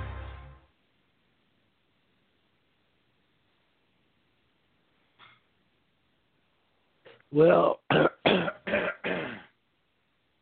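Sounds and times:
speech: 7.3s - 8.1s
harsh rasping throat clearing: 7.9s - 9.6s.

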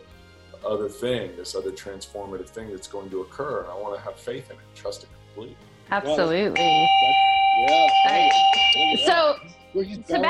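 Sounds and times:
speech: 0.6s - 10.2s
yak bell ringing: 6.2s - 9.4s.

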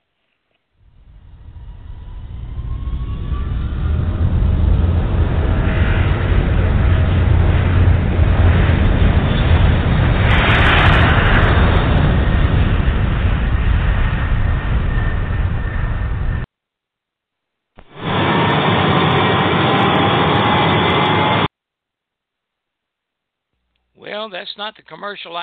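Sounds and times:
airliner engines roaring on takeoff roll down the runway: 0.8s - 16.5s, 17.8s - 21.5s
speech: 24.2s - 25.4s.

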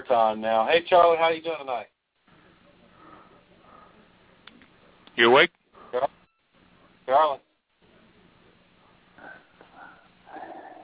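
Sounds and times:
speech: 0.1s - 2.0s, 5.2s - 6.2s, 7.1s - 7.4s
man breathing over a tinny phone line: 2.3s - 4.2s, 5.7s - 6.4s, 9.2s - 10.2s.

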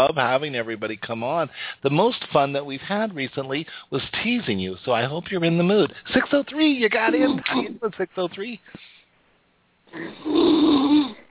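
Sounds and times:
speech: 0.0s - 8.9s, 9.9s - 11.2s
person snoring: 9.9s - 11.2s.

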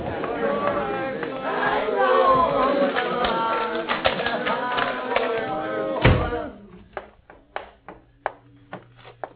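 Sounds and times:
crowd of the sick and the mad shouting outside a house door: 0.0s - 6.7s
house door thud: 6.0s - 6.4s.

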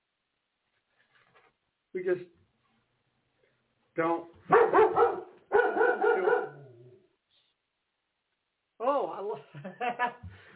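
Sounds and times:
speech: 2.0s - 2.4s, 4.0s - 4.7s
dog barking: 4.4s - 7.0s.

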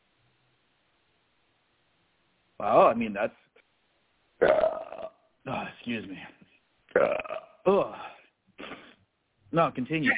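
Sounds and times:
speech: 2.6s - 3.5s, 4.4s - 4.8s, 5.5s - 8.1s, 9.5s - 10.1s
loud croaking burps: 4.4s - 5.2s, 6.9s - 7.9s.

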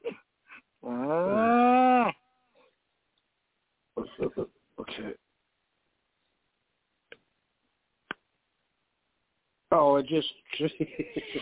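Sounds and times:
cow mooing: 0.8s - 2.1s
speech: 10.1s - 11.4s
laughter: 10.7s - 11.4s.

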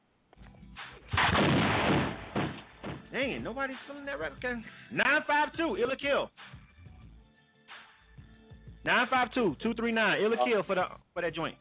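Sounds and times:
shotgun blast sound effect: 1.1s - 2.7s
speech: 3.2s - 6.4s, 8.8s - 11.5s.

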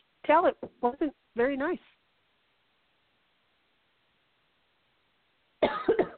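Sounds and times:
speech: 0.3s - 1.9s
harsh coughing: 5.6s - 6.1s.

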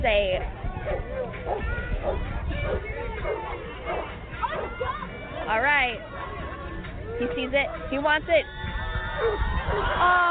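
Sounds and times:
crowd chatter and voices: 0.0s - 10.2s
dog barking excitedly for a toy: 0.9s - 4.9s
speech: 7.2s - 8.6s, 9.2s - 10.2s.

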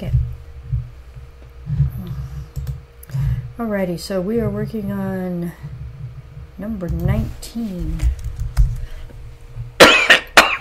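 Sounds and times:
soft low rumble: 0.0s - 9.8s
speech: 3.6s - 5.8s, 6.6s - 8.2s
harsh coughs: 9.8s - 10.6s.

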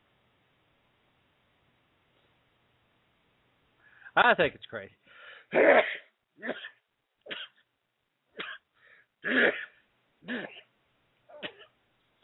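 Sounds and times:
speech: 4.2s - 6.7s, 9.2s - 10.6s
person sneezing: 5.5s - 7.6s, 9.2s - 10.7s.

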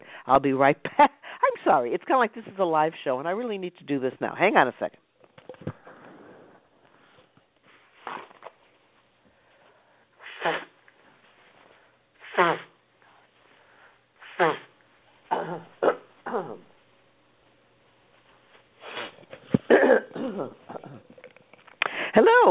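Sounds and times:
speech: 0.2s - 5.0s
person blowing nose: 10.2s - 10.8s, 12.2s - 12.8s, 14.2s - 16.6s, 18.8s - 20.0s
person sniffing: 10.2s - 10.8s, 12.2s - 12.8s, 14.2s - 16.6s, 18.8s - 19.7s
person coughing and clearing throat: 15.3s - 16.7s, 19.5s - 21.2s.

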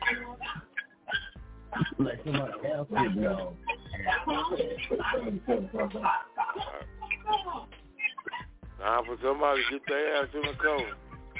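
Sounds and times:
dog barking angrily: 0.0s - 7.0s
speech: 2.0s - 6.3s, 8.8s - 11.3s.

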